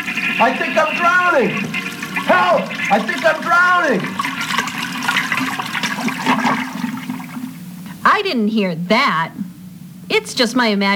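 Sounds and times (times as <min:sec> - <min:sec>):
toilet flushing: 0:00.0 - 0:07.7
speech: 0:00.4 - 0:04.3, 0:08.2 - 0:09.4, 0:10.1 - 0:10.9.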